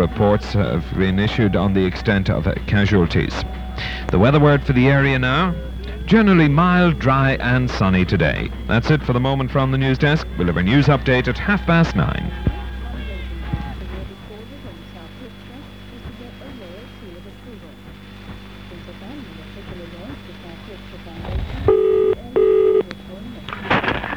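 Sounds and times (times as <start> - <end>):
speech: 0.0 - 12.5
faint murmur: 0.0 - 24.1
steady low hum: 0.0 - 24.1
electronic telephone-dialing tones: 21.7 - 22.9.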